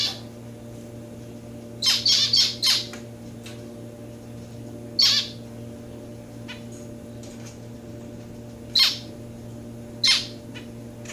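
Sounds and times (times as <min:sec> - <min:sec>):
steady low hum: 0:00.0 - 0:11.1
society finch Lonchura striata domestica calls: 0:01.8 - 0:03.0, 0:05.0 - 0:05.4, 0:08.7 - 0:09.1, 0:10.0 - 0:10.4.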